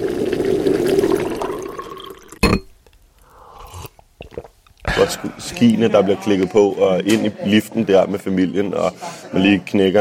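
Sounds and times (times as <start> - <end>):
coffee being poured: 0.0 - 2.7
speech: 5.1 - 9.9.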